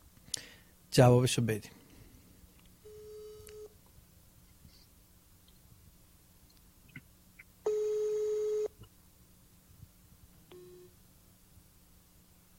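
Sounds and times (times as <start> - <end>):
low hum: 0.0 - 12.5
speech: 1.0 - 1.8
electronic ringback tones of an unanswered outgoing telephone call: 2.8 - 3.8, 7.7 - 8.7, 10.5 - 10.9.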